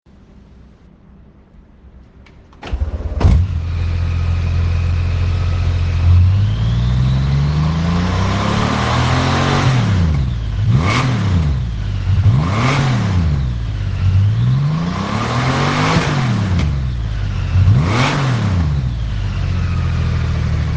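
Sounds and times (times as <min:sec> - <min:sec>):
Honda Goldwing motorcycle engine: 0:02.7 - 0:20.7.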